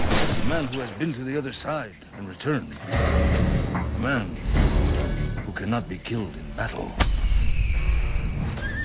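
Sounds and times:
low rumbling background: 0.0s - 8.8s
speech: 0.6s - 4.7s, 5.6s - 7.1s
horse neighing: 8.6s - 8.8s.

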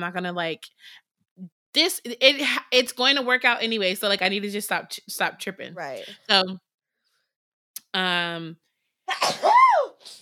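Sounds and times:
speech: 0.0s - 6.6s, 7.9s - 10.1s
forceful human sneeze: 9.1s - 10.1s.

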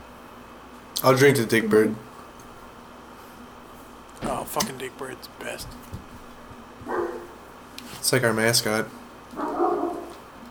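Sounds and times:
speech: 1.0s - 2.1s, 4.6s - 6.1s, 8.0s - 9.5s
dog barking and whimpering: 6.8s - 7.4s, 9.4s - 10.2s.

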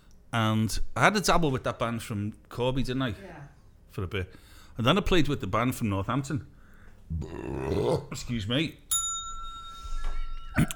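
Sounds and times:
speech: 0.4s - 6.5s, 7.1s - 8.8s, 10.6s - 10.7s
bicycle bell ring: 8.9s - 10.6s.

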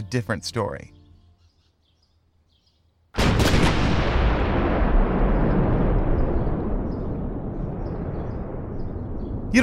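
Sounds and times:
speech: 0.0s - 1.0s
repeated loud explosions in Post Texas: 3.2s - 9.6s.

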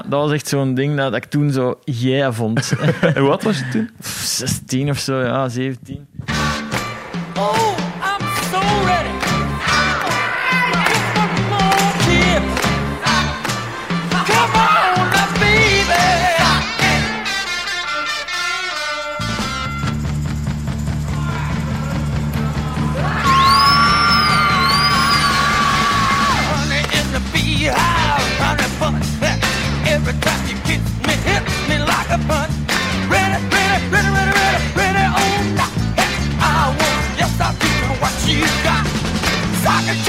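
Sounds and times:
speech: 0.1s - 6.6s, 7.4s - 7.7s
laughter: 2.6s - 3.9s
punchy drums: 6.0s - 17.4s, 19.2s - 40.0s
Chicago-style rhythm and blues rock record: 6.0s - 40.0s
shouted vocals: 9.7s - 12.5s.

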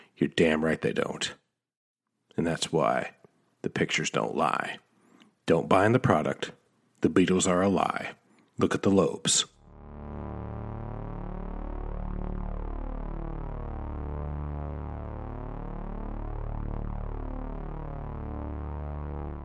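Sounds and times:
speech: 0.2s - 1.4s, 2.4s - 4.8s, 5.5s - 10.2s
brown note very low-frequency buzzy drone with phasing sweep: 9.6s - 19.4s.

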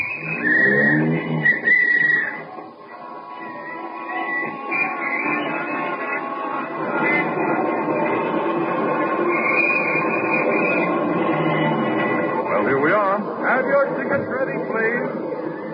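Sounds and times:
horn-like tone: 0.0s - 13.4s
busy street noise of evening city traffic: 0.0s - 15.7s
taxi cab engine rumbling in evening city traffic: 0.0s - 15.7s.

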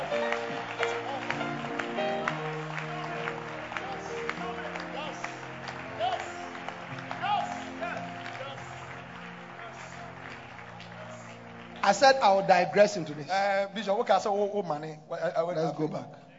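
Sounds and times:
wash of voices: 0.0s - 11.8s
audience clapping at a church service: 0.0s - 14.2s
music: 0.0s - 16.3s
speech: 11.9s - 16.3s.

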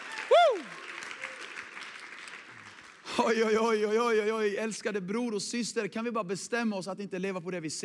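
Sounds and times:
faint cheers: 0.0s - 1.6s
crowd applauding: 0.0s - 3.6s
speech: 3.2s - 7.8s.

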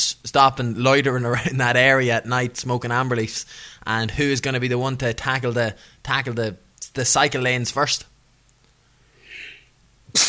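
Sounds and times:
speech: 0.3s - 8.1s
soft breathy intake: 9.1s - 10.2s
person sneezing: 9.2s - 10.2s.

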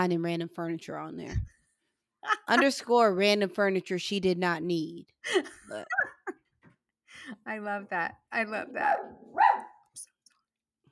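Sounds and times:
speech: 0.0s - 1.6s, 2.2s - 6.1s, 7.2s - 9.7s
laughter: 2.2s - 2.8s
single sharp dog bark: 8.8s - 9.9s.

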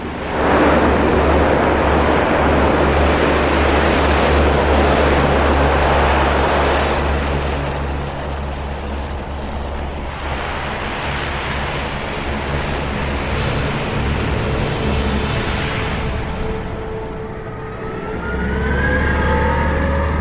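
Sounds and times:
huge polar shuttle bus engine drone driving on ice: 0.0s - 20.1s
rising mechanical whine of huge shuttle bus: 0.0s - 20.1s.

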